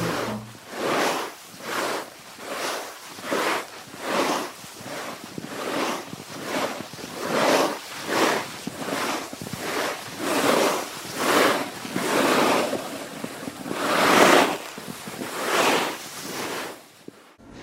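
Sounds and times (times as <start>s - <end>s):
ocean waves crashing against rocks: 0.0s - 17.0s.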